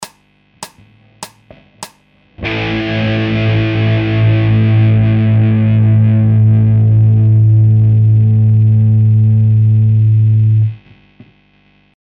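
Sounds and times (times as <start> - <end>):
hard guitar loops: 0.0 - 10.7.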